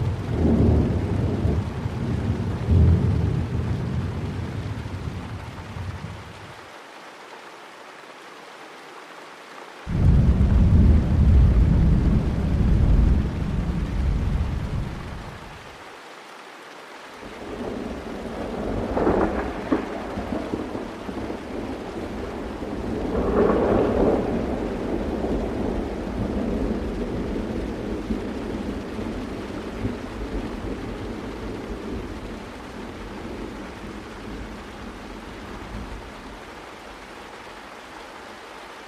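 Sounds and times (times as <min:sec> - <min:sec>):
deep thunder rumbles: 0:00.0 - 0:06.2, 0:09.9 - 0:15.6, 0:17.4 - 0:36.4
steady rain hissing: 0:00.0 - 0:38.8.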